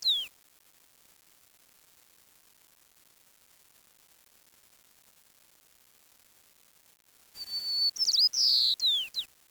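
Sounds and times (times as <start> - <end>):
bird whistling: 0.0 - 0.3, 7.4 - 9.3.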